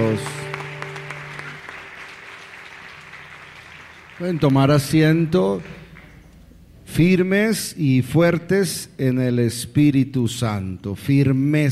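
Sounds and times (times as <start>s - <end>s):
sustained organ-like tone: 0.0s - 4.4s
congregation applauding in a large room: 0.0s - 6.3s
speech: 0.1s - 0.4s, 4.2s - 5.8s, 6.9s - 11.7s.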